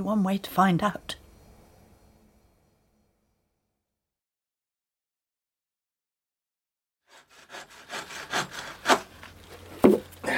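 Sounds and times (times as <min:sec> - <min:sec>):
speech: 0:00.0 - 0:01.2
hand saw sawing wood for shelves: 0:07.1 - 0:10.2.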